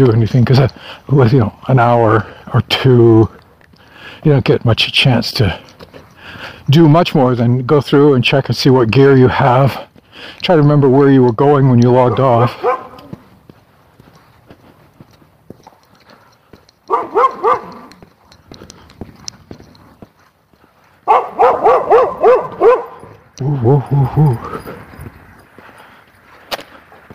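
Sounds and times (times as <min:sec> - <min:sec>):
speech: 0:00.0 - 0:03.4, 0:04.0 - 0:12.8, 0:23.7 - 0:24.7
red dog barking behind a fence: 0:12.1 - 0:13.1, 0:16.9 - 0:17.9, 0:21.0 - 0:23.2
red dog howling yips: 0:16.9 - 0:18.0.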